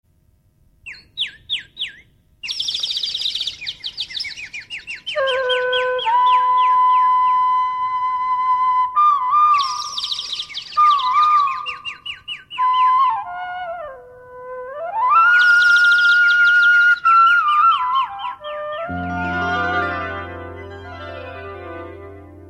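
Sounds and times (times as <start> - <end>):
birds: 0.8 - 7.2, 9.6 - 13.0, 15.4 - 18.8
flute: 4.9 - 22.4.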